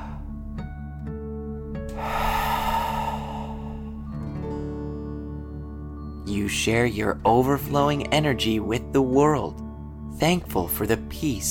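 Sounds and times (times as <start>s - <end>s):
slow deep breath in and out: 0.0s - 0.6s, 1.9s - 4.4s
steady low musical drone with soft tones: 1.9s - 4.6s
speech: 6.3s - 9.6s, 10.2s - 11.4s.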